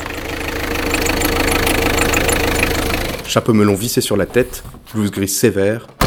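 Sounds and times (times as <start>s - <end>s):
black car engine rumbling with knocking drone: 0.0s - 6.0s
speech: 3.3s - 6.0s.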